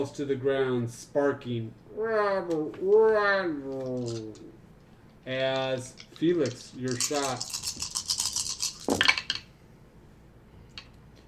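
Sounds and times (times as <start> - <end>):
speech: 0.0 - 4.6, 5.2 - 7.9
handful of dice clattering and rattling: 3.8 - 4.5, 5.4 - 9.5.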